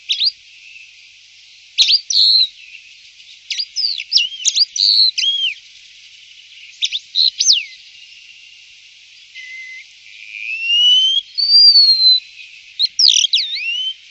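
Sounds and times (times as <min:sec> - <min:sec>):
bird calls with sharp chirps and whistles: 0:00.0 - 0:00.8, 0:01.8 - 0:02.8, 0:03.5 - 0:05.6, 0:06.7 - 0:07.8, 0:09.3 - 0:14.0.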